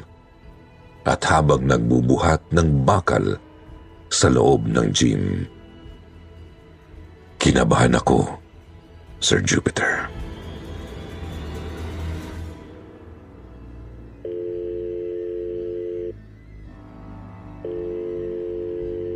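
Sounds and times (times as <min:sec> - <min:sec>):
speech: 0:01.0 - 0:03.5, 0:04.1 - 0:05.6, 0:07.4 - 0:08.4, 0:09.2 - 0:10.2
ringback tone of an unanswered telephone call: 0:14.2 - 0:16.2, 0:17.6 - 0:19.1.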